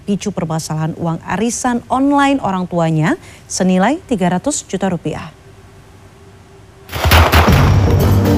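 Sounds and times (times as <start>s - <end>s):
speech: 0.1s - 5.4s
police warning gunshots fired into the air: 6.9s - 8.2s.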